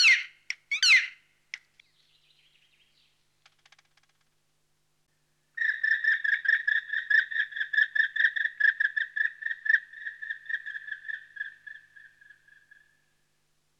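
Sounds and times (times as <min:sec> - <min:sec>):
Black woodpecker harsh call notes: 0:00.0 - 0:01.7, 0:05.6 - 0:13.0.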